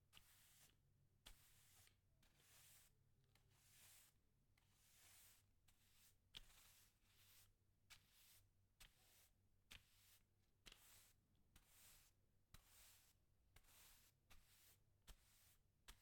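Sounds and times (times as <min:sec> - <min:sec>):
broomstick sweeping tiles: 0:00.1 - 0:16.0.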